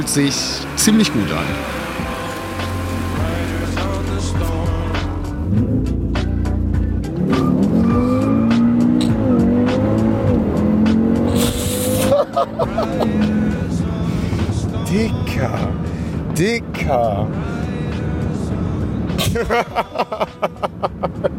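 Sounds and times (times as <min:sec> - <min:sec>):
speech: 0:00.0 - 0:01.8, 0:12.4 - 0:13.6, 0:14.9 - 0:15.8, 0:16.4 - 0:17.6, 0:19.3 - 0:21.3
Audi tires squealing: 0:00.0 - 0:04.3, 0:07.1 - 0:13.3
dark green tuned Audi engine revving driving out of a hall: 0:00.0 - 0:19.4
laughter: 0:11.9 - 0:13.3, 0:19.2 - 0:21.3.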